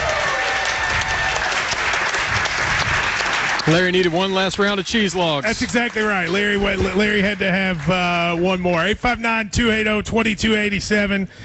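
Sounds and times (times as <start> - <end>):
audience applauding for arriving guests: 0.0 - 8.8
speech: 3.7 - 11.4.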